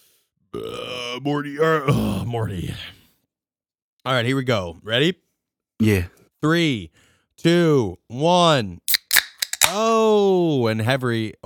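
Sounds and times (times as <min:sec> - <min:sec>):
speech: 0:00.5 - 0:03.0, 0:04.0 - 0:05.2, 0:05.8 - 0:08.8, 0:09.7 - 0:11.4
low rumbling sustained belch: 0:00.6 - 0:02.7.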